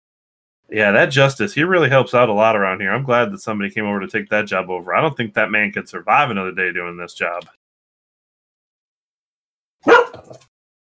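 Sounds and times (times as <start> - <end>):
speech: 0.7 - 7.6
single sharp dog bark trailing into a rougher yelp: 9.8 - 10.4.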